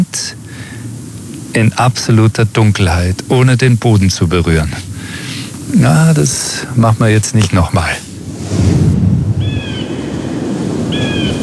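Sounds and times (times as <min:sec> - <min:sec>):
steady rushing wind or surf noise: 0:00.0 - 0:11.4
speech: 0:00.1 - 0:00.7, 0:01.5 - 0:04.9, 0:05.7 - 0:08.8
falcon giving high thin calls at a rock face in the Allgäu: 0:09.4 - 0:10.2, 0:10.9 - 0:11.4.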